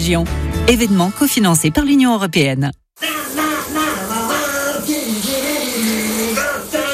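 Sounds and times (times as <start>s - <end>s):
speech: 0.0s - 2.8s
person singing a wavering tune: 3.0s - 6.9s
shower water running: 3.0s - 6.9s.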